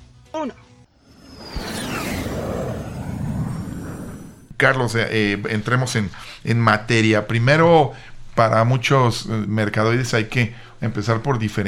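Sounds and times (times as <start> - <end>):
speech: 0.4 - 0.7, 4.6 - 11.6
airplane takeoff roar sound effect: 0.9 - 4.6
whoosh sweeping downward in pitch: 1.0 - 4.6.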